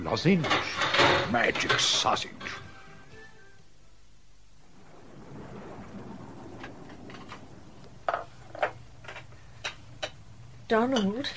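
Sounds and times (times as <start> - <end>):
speech: 0.0 - 2.6, 10.7 - 11.3
steady rain hissing: 0.0 - 11.3
low rolling rumble of thunder: 4.5 - 10.7.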